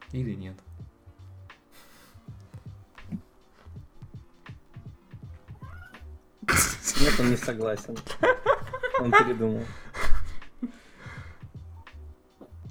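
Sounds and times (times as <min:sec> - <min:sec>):
speech: 0:00.1 - 0:00.7, 0:07.1 - 0:08.3, 0:09.0 - 0:09.8
cat meowing: 0:05.5 - 0:06.2
laughter: 0:06.8 - 0:10.8.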